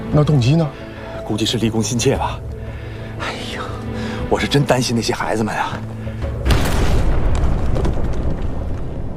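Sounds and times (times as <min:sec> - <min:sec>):
speech: 0:00.1 - 0:02.5, 0:04.3 - 0:06.0
explosion of discarded explosives: 0:06.4 - 0:09.1.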